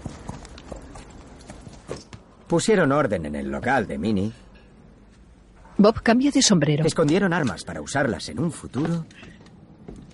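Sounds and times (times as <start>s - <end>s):
horses' hooves clip-clopping at a slow walk in a snowy Western scene: 0.0s - 2.3s
speech: 2.5s - 4.4s, 5.8s - 9.4s.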